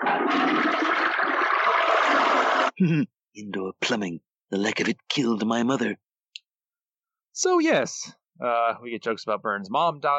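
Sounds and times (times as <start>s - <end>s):
toilet flushing: 0.0s - 2.8s
speech: 2.8s - 6.0s, 7.4s - 10.1s.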